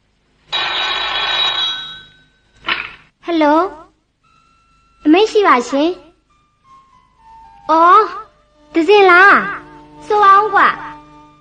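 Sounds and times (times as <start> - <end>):
telephone bell ringing in a bright metallic burst: 0.5 - 2.6
speech: 3.4 - 3.8, 5.1 - 6.0, 7.7 - 10.8.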